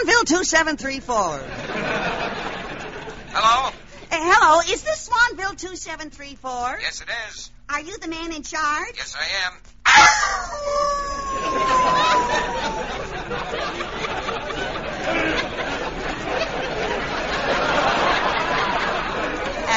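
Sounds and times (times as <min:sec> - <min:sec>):
speech: 0:00.2 - 0:02.4, 0:03.4 - 0:15.4
laughter: 0:01.4 - 0:04.1, 0:10.0 - 0:19.7
wolf from a pack newly arrived at a zoo howling: 0:09.9 - 0:13.2.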